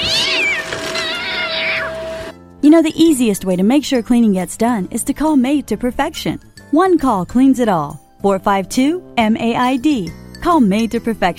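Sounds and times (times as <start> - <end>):
cat meowing with high-pitched caterwauling calls: 0.0 - 2.3
speech: 2.6 - 11.3.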